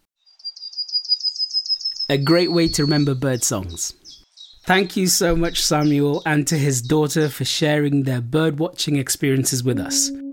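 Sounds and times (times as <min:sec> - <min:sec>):
yellowhammer singing: 0:00.4 - 0:07.4
speech: 0:02.1 - 0:04.0, 0:04.7 - 0:10.3.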